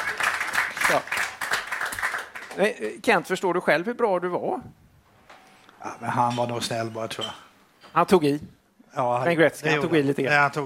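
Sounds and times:
many hands clapping as inserted applause sound effect: 0.0 - 2.8
speech: 0.9 - 1.2, 2.6 - 4.8, 5.8 - 10.6.

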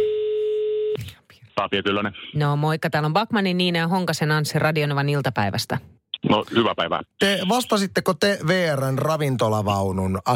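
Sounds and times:
steady electronic telephone tone: 0.0 - 1.0
speech: 1.6 - 10.3.

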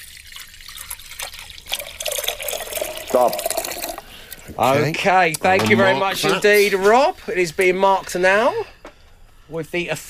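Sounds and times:
water pouring into a container: 0.0 - 4.3
speech: 3.1 - 3.5, 4.5 - 8.7, 9.5 - 10.0.

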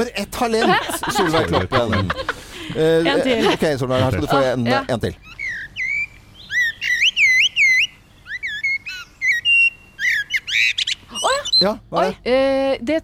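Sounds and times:
speech: 0.0 - 5.3, 11.6 - 13.0
laughter: 0.5 - 4.9
common blackbird singing: 5.2 - 11.8.

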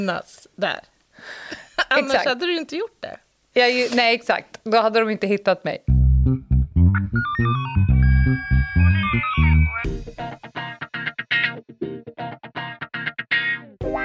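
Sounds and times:
speech: 0.0 - 8.5
melodic electronic ringing tone of an outgoing phone call: 7.3 - 9.9.

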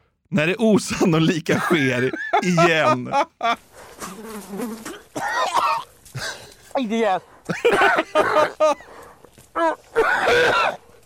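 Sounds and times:
speech: 0.3 - 9.0, 9.6 - 10.8
laughter: 1.5 - 3.6, 7.5 - 8.9
large fly buzzing: 4.0 - 5.2.

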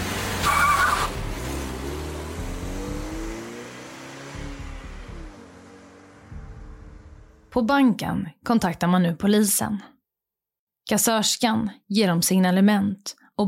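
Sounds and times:
car tire squeal: 0.0 - 1.3
car engine revving hard and shifting through gears: 0.0 - 7.6
speech: 7.6 - 9.9, 10.9 - 13.4.

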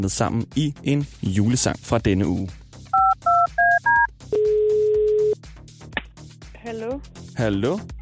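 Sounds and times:
speech: 0.0 - 2.6, 6.7 - 7.9
long steady telephone beep as the call connects: 3.0 - 5.4.

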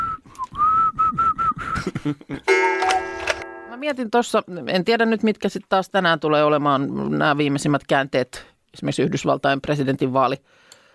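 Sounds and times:
person whistling short choppy notes at a steady pitch: 0.0 - 2.0
speech: 1.8 - 2.7, 3.8 - 10.7
bright buzzy tone: 2.5 - 3.8
sharp clicks: 2.8 - 3.5.

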